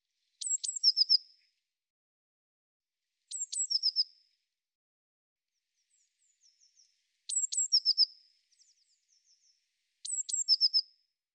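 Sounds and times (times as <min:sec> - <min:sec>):
Eurasian blue tit calling: 0:00.4 - 0:01.2, 0:03.3 - 0:04.1, 0:07.3 - 0:08.1, 0:10.0 - 0:10.8.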